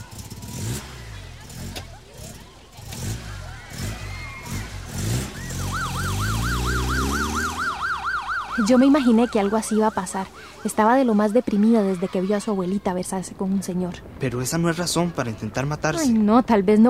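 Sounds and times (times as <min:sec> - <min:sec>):
crowd noise and voices: 0:00.0 - 0:05.6, 0:08.2 - 0:16.8
low engine rumble: 0:00.0 - 0:16.8
ambulance siren wailing: 0:03.3 - 0:12.7
speech: 0:08.6 - 0:16.8.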